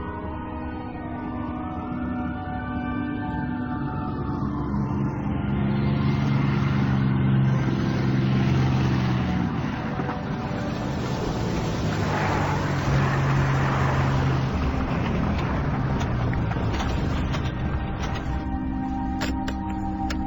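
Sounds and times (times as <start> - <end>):
faint siren-like wail: 0.0 - 20.2
continuous roar of city traffic: 4.0 - 20.2
cars rushing past: 5.8 - 18.6.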